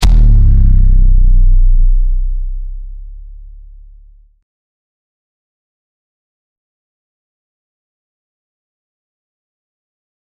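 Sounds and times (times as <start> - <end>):
deep boom with heavy bass: 0.0 - 4.3.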